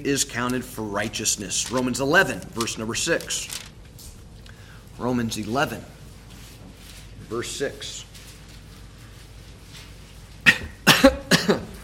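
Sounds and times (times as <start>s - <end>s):
speech: 0.0s - 3.7s, 5.0s - 6.0s, 7.3s - 8.1s
person coughing after inhaling coffee: 10.4s - 11.8s.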